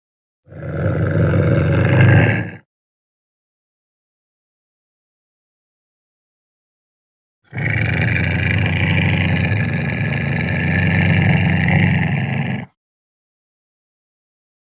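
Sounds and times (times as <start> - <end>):
ocelot harsh raspy growl call: 0.5 - 2.7, 7.5 - 12.8.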